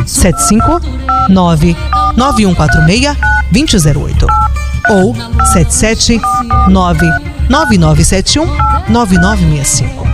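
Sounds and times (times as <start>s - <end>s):
speech: 0.1s - 10.0s
telephone ringing in electronic tone bursts: 0.3s - 3.5s, 4.3s - 7.8s, 8.6s - 9.4s.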